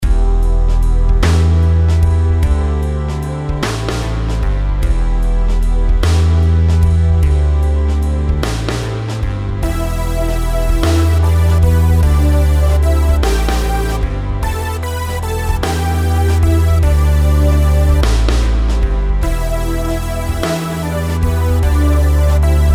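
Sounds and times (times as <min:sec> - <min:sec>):
compound melodies in E minor: 0:00.0 - 0:22.7.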